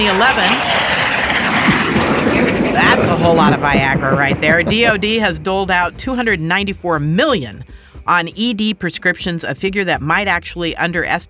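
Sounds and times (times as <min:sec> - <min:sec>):
speech: 0:00.0 - 0:01.8, 0:02.8 - 0:11.2
jet engine roar: 0:00.0 - 0:06.0.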